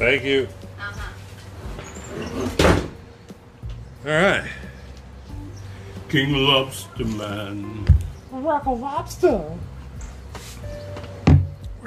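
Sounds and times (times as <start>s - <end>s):
speech: 0.0s - 0.6s, 4.0s - 4.7s, 6.1s - 9.7s
door closing: 1.8s - 3.0s.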